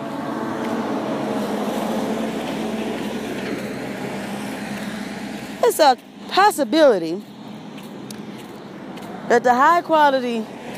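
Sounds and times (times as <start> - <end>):
heavy vehicle rumbling past with engine and road noise: 0.0 - 5.6
speech: 5.7 - 7.3, 9.3 - 10.6.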